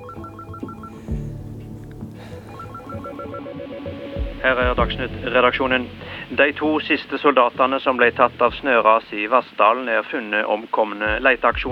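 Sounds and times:
telephone ringing with electronic warble: 0.0s - 1.3s, 2.5s - 4.5s
speech: 4.4s - 11.7s.

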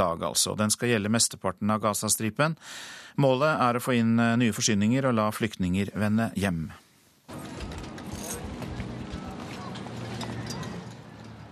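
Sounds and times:
speech: 0.0s - 7.8s
hooves of a donkey pulling a cart clip-clopping: 7.3s - 11.5s
murmuring voices: 7.3s - 11.5s
rattling: 7.3s - 11.5s.

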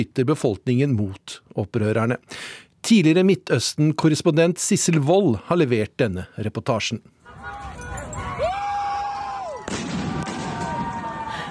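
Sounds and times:
speech: 0.0s - 7.6s
crowd of young protesters shouting and yelling outdoors: 7.3s - 11.5s.

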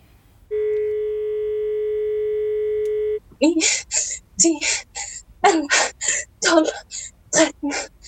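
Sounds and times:
mobile phone dialing tone on speakerphone calling emergency number: 0.5s - 3.2s
speech: 3.4s - 7.9s.

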